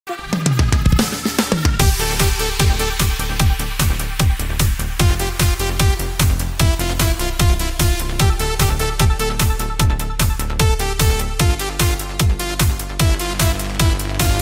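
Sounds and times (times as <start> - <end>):
retrowave synthwave music: 0.1 - 14.3.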